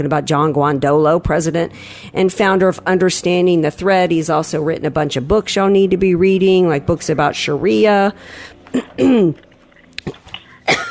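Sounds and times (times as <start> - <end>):
speech: 0.0 - 10.8
person coughing from a cookie crumb in the throat: 8.7 - 9.4, 10.5 - 10.8
throat clearing from a cookie crumb: 8.7 - 9.4, 10.0 - 10.8.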